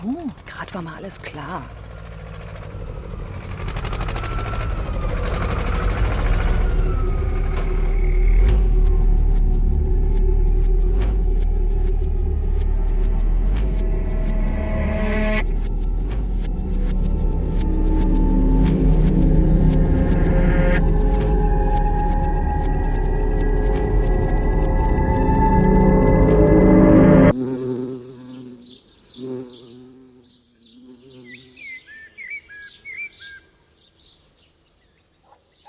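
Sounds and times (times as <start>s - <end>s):
speech: 0.0s - 1.8s
tractor engine rumbling: 0.0s - 27.3s
faint tonal whines: 1.8s - 27.3s.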